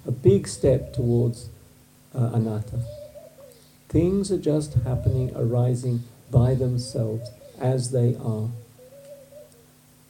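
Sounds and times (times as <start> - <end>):
steady low hum: 0.0 - 10.0
speech: 0.2 - 1.6, 2.2 - 3.0, 3.9 - 8.6
bird hooting whistled note: 2.6 - 3.7, 6.8 - 7.6, 8.5 - 9.7.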